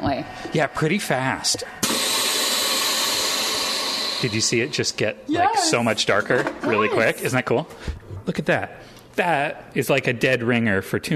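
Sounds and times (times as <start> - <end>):
speech: 0.0 - 1.9, 4.2 - 11.1
chamber vacuum sealer with lid closed pumping air out: 1.8 - 4.8.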